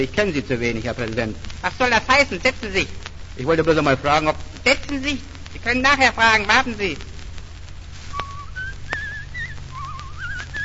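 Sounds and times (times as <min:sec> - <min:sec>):
speech: 0:00.0 - 0:07.1
low hum: 0:00.0 - 0:10.6
man whistling an operetta melody: 0:08.1 - 0:10.6
sharp clicks: 0:08.2 - 0:10.6.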